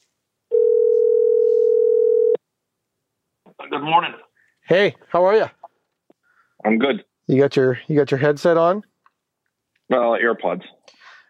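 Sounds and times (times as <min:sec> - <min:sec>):
telephone dial tone as a call is placed: 0:00.5 - 0:02.4
speech: 0:03.6 - 0:05.6, 0:06.6 - 0:08.9, 0:09.9 - 0:10.8.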